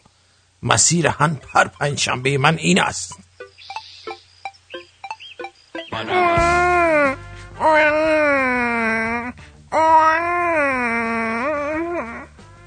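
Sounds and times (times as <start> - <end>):
speech: 0.6 - 3.3, 6.0 - 8.6
man imitating a crying baby: 5.9 - 12.4.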